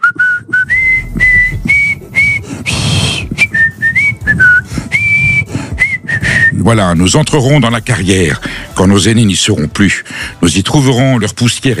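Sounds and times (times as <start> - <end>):
person whistling a marching anthem melody: 0.0 - 6.7
breathy burst: 0.7 - 3.6, 4.4 - 6.5, 8.4 - 8.8
speech: 6.7 - 11.7.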